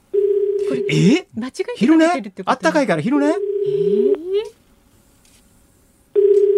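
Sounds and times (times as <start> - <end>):
unanswered phone call ringback tone beep: 0.2 - 1.0, 3.4 - 4.3, 6.2 - 6.5
speech: 0.7 - 4.6.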